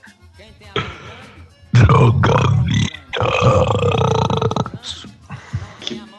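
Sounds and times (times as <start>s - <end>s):
man burping loudly during a burping contest: 0.8s - 6.1s
speech: 1.9s - 2.9s.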